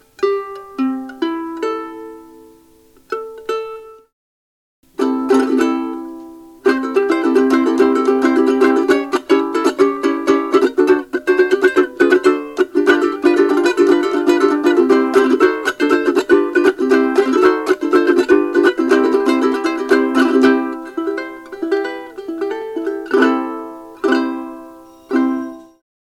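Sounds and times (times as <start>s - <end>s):
soprano ukulele: 0.0s - 4.1s, 4.9s - 25.8s.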